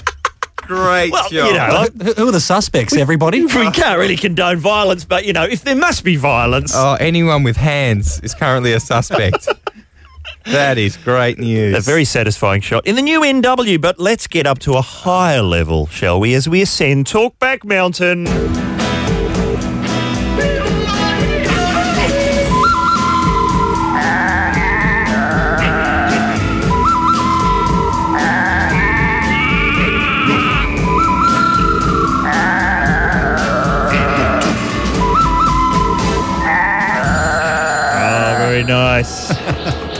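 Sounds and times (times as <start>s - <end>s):
speech: 0.7s - 9.8s, 10.4s - 18.8s
loud busy piece of music: 0.8s - 2.0s, 18.3s - 39.9s
laughter: 8.2s - 11.2s, 38.0s - 39.9s
goats bleating: 24.0s - 26.4s, 28.2s - 30.7s, 32.2s - 34.5s.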